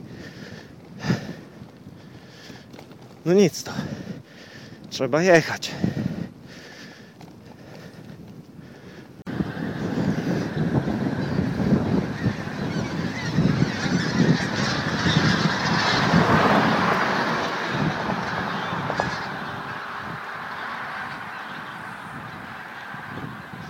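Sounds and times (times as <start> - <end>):
strong headwind buffeting the microphone while riding into the wind: 0.0 - 23.6
speech: 3.2 - 4.0, 4.9 - 5.9
large flock of geese honking flying low overhead: 8.8 - 23.6
car driving over bumpy ground: 15.1 - 21.3.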